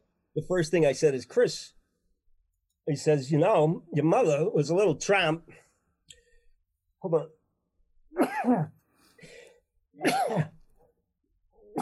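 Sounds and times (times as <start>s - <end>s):
speech: 0.4s - 1.8s, 2.9s - 5.6s, 7.0s - 7.4s, 8.2s - 8.8s, 10.0s - 10.5s
quiet breathing: 5.5s - 6.7s, 8.8s - 9.8s
person sneezing: 8.2s - 8.8s, 10.0s - 10.7s.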